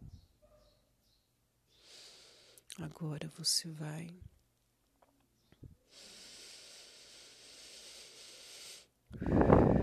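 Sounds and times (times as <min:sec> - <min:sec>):
long airy inhale during a breathing exercise: 0:01.7 - 0:02.7, 0:05.9 - 0:09.8
louder fuller exhale: 0:01.7 - 0:02.7, 0:05.9 - 0:09.8
speech: 0:02.8 - 0:04.3.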